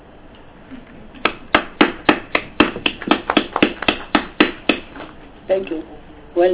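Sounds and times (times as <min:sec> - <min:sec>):
committee members clapping hands: 0:01.2 - 0:05.2
speech: 0:05.5 - 0:06.5.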